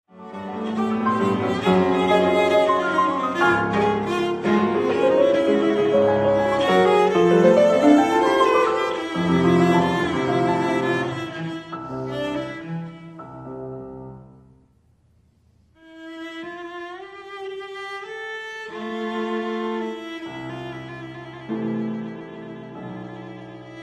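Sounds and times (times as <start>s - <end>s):
cello: 0.1s - 14.6s, 15.6s - 23.8s
piano: 0.1s - 23.8s.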